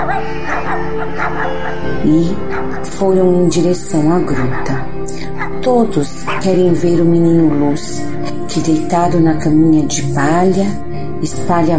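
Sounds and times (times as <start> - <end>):
shepherds' dogs barking and yipping: 0.0 - 2.9, 4.1 - 6.8
speech: 1.0 - 11.7.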